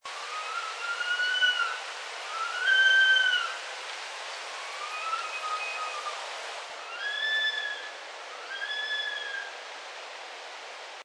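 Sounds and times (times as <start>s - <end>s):
saw-whet owl screaming: 0.2s - 3.6s, 4.6s - 6.2s, 6.8s - 9.6s.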